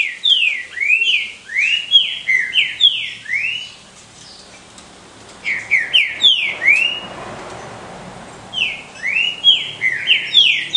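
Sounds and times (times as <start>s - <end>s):
Green-winged saltator song of bright whistled slurs: 0.0s - 4.5s, 5.4s - 7.1s, 8.5s - 10.7s.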